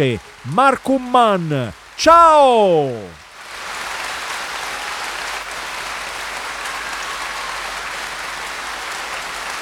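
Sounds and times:
speech: 0.0 - 3.2
large audience applauding at a live concert: 0.0 - 9.6.

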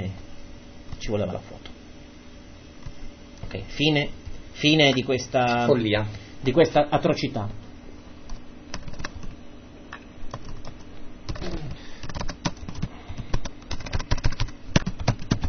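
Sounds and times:
faint steady hum: 0.0 - 15.4
speech: 1.1 - 1.7, 3.5 - 7.6
clicking of keys on a computer keyboard: 8.7 - 9.3, 10.3 - 15.4.

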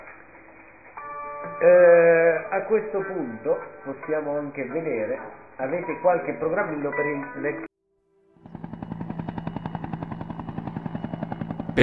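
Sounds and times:
speech: 1.4 - 7.7
helicopter sound effect with rotor chopping: 8.4 - 11.8.

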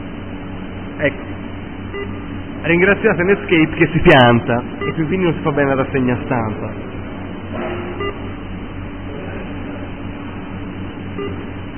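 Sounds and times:
speech: 1.0 - 7.0
computer message alert beeps: 4.8 - 5.1, 11.2 - 11.5.

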